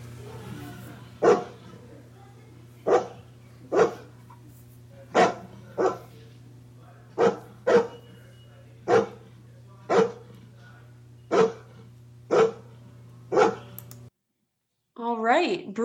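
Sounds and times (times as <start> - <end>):
low constant hum: 0.0 - 14.1
dog barking: 1.2 - 1.8, 2.8 - 4.1, 5.1 - 6.2, 7.1 - 8.0, 8.8 - 10.3, 11.3 - 13.7
speech: 15.4 - 15.8.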